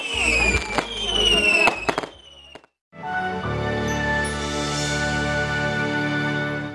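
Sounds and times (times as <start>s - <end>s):
fireworks exploding at a festival: 0.0s - 2.8s
steady musical backdrop: 3.0s - 6.7s.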